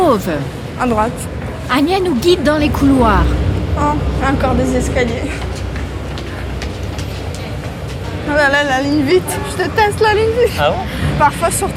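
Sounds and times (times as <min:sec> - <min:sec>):
metro train rumbling through a station: 0:00.0 - 0:11.7
speech: 0:00.2 - 0:05.6, 0:08.3 - 0:11.7
metro train wheels clattering over the rails: 0:03.3 - 0:10.1.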